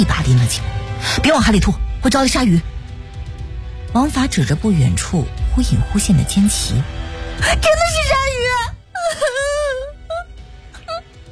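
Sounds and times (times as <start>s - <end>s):
speech: 0.0s - 2.7s, 3.9s - 9.4s
girl crying loudly on a raft at sea: 8.9s - 11.0s.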